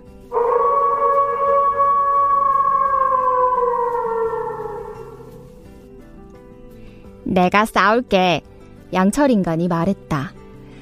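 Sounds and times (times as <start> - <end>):
wolf howling: 0.3 - 5.5
speech: 7.4 - 10.4.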